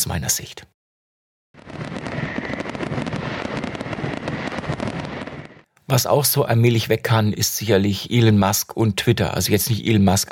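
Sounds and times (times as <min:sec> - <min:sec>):
speech: 0:00.0 - 0:00.8, 0:05.9 - 0:10.2
fireworks exploding with crackling and popping: 0:01.6 - 0:05.7
rumbling low fireworks booms: 0:01.6 - 0:05.7.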